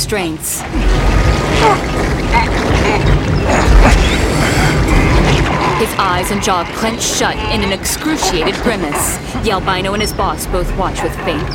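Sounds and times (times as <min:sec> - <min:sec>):
speech: 0:00.1 - 0:11.5
water pouring down a chute: 0:00.7 - 0:08.3
machine gears grinding and creaking, cranked by a water-driven paddle wheel: 0:00.7 - 0:11.5.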